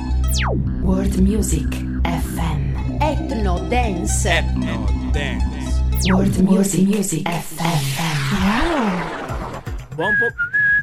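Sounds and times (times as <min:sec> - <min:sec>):
speech: 0:00.4 - 0:09.2, 0:10.0 - 0:10.5
person whistling a theme tune: 0:10.0 - 0:10.8.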